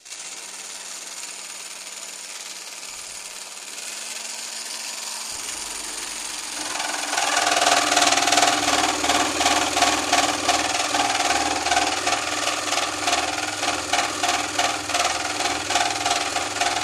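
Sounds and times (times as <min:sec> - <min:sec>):
jigsaw cutting: 0:00.0 - 0:16.8.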